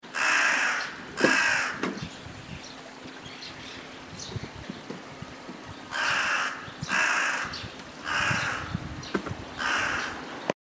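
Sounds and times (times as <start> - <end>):
hasibosogarasu crow: 0.2 - 1.8, 5.9 - 8.7, 9.6 - 10.2.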